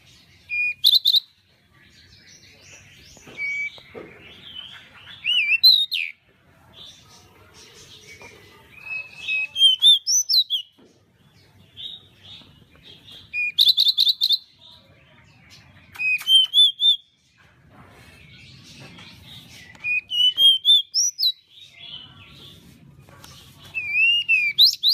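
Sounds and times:
pied bushchat singing thin wavering whistles and twittering notes: 0:00.4 - 0:01.4, 0:03.0 - 0:06.2, 0:08.8 - 0:10.7, 0:13.1 - 0:14.6, 0:15.9 - 0:17.1, 0:19.4 - 0:22.0, 0:23.7 - 0:24.9.

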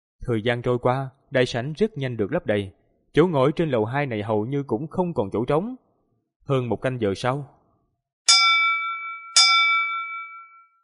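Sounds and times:
speech: 0:00.2 - 0:05.8, 0:06.4 - 0:07.6
bell ringing in a large auction hall: 0:08.3 - 0:10.8.

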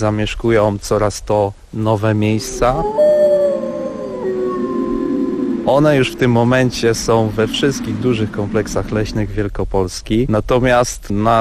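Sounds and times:
speech: 0:00.0 - 0:03.0, 0:05.7 - 0:11.3
faint hiss: 0:00.0 - 0:11.3
wolf howling in Poland recorded by a camera trap: 0:02.2 - 0:07.9.

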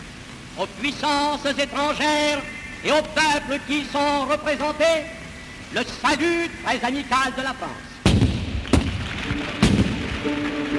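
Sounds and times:
speech: 0:00.6 - 0:07.9, 0:09.3 - 0:10.6
cannon shots fired outside: 0:08.0 - 0:10.1.

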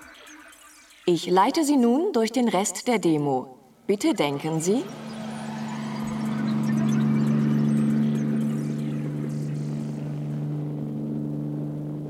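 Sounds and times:
speech: 0:01.1 - 0:05.1
police patrol helicopter descending between rooftops and curving away: 0:04.1 - 0:12.0.

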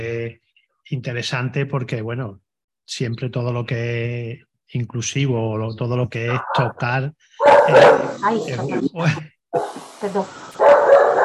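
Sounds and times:
speech: 0:00.0 - 0:10.4
dog barking when someone passes the door: 0:07.4 - 0:08.2, 0:09.6 - 0:09.8, 0:10.6 - 0:11.2.

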